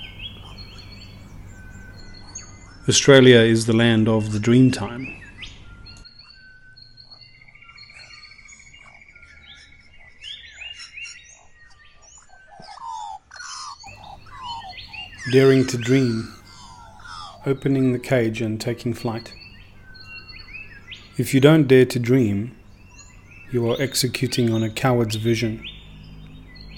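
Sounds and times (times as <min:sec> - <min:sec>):
Australian birds calling, warbling, whistling and trilling: 0:00.0 - 0:26.7
speech: 0:02.9 - 0:05.2, 0:15.3 - 0:16.4, 0:17.4 - 0:19.4, 0:21.2 - 0:22.6, 0:23.5 - 0:25.8.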